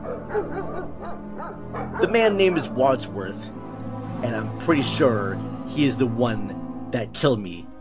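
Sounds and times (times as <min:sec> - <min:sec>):
two large dogs barking: 0:00.0 - 0:02.9
speech: 0:00.3 - 0:00.7, 0:01.4 - 0:03.6, 0:04.2 - 0:07.7.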